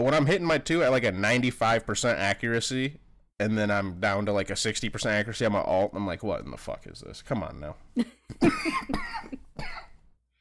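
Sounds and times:
speech: 0:00.0 - 0:09.7
harsh coughs: 0:08.3 - 0:10.0.

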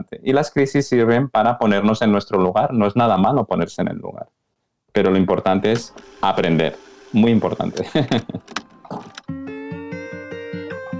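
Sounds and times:
speech: 0:00.2 - 0:04.4, 0:05.0 - 0:08.6
jukebox mechanism whirring and clunking: 0:05.5 - 0:09.2
laughter: 0:07.8 - 0:08.5.

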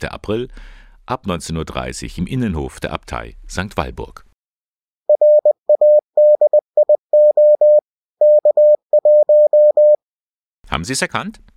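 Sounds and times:
speech: 0:00.0 - 0:04.3, 0:10.7 - 0:11.5
Morse code tones: 0:05.1 - 0:10.0.

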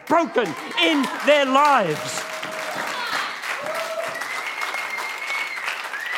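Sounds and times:
room full of people clapping: 0:00.0 - 0:06.1
speech: 0:00.1 - 0:02.3
faint whoops and voices: 0:02.2 - 0:06.1.

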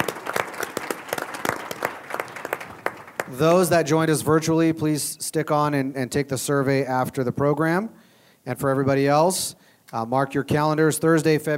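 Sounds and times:
audience applauding: 0:00.0 - 0:03.6
speech: 0:03.3 - 0:11.5.

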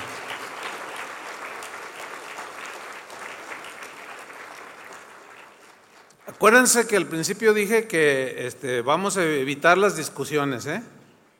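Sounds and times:
audience applauding: 0:00.0 - 0:06.9
speech: 0:06.3 - 0:11.3.

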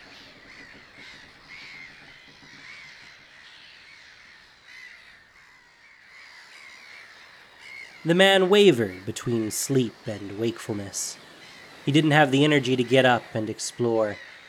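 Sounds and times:
chorus of squawking seabirds: 0:00.0 - 0:14.4
speech: 0:08.0 - 0:11.3, 0:11.9 - 0:14.3.

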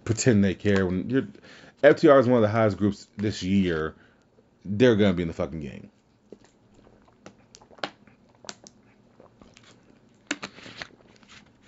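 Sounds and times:
speech: 0:00.1 - 0:04.0, 0:04.6 - 0:06.0
wet mouth clicks: 0:06.3 - 0:11.1
person sipping water: 0:06.3 - 0:11.6.

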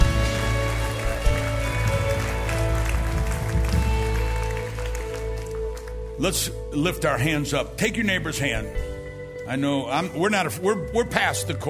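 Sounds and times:
crowd of people applauding: 0:00.0 - 0:06.6
speech: 0:06.2 - 0:08.8, 0:09.5 - 0:11.6.

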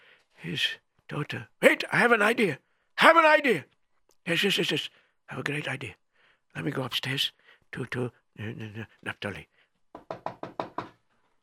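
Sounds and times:
speech: 0:00.4 - 0:06.0, 0:06.6 - 0:09.5
knocking on a wooden door: 0:09.9 - 0:11.0.

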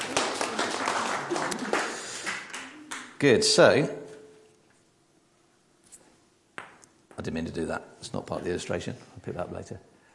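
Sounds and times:
crowd applauding a volunteer: 0:00.0 - 0:03.2
speech: 0:03.2 - 0:04.0, 0:07.2 - 0:09.9.

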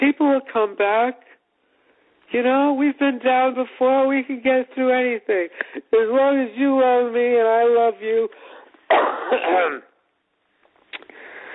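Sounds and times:
speech: 0:00.4 - 0:01.3, 0:02.3 - 0:09.9
harsh raspy cough: 0:08.9 - 0:09.9.

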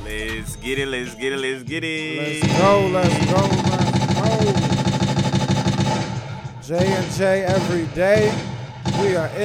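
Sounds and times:
speech: 0:00.1 - 0:03.8, 0:06.7 - 0:09.4
rapid burst of gunshot sound effects like automatic fire: 0:02.4 - 0:09.4.

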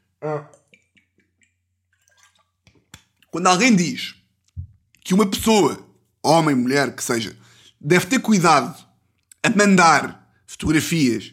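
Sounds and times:
speech: 0:00.2 - 0:00.6, 0:03.3 - 0:04.2, 0:05.1 - 0:08.8, 0:09.4 - 0:11.3
swallow: 0:00.2 - 0:03.4
person sipping water: 0:00.4 - 0:03.4.

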